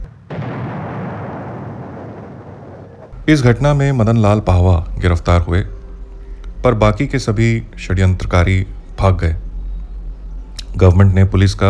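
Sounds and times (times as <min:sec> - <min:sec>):
bomb blast: 0:00.0 - 0:11.6
heavy sustained rumbling roar of a bomb explosion: 0:00.0 - 0:11.6
speech: 0:03.3 - 0:05.8, 0:06.6 - 0:09.4, 0:10.8 - 0:11.6.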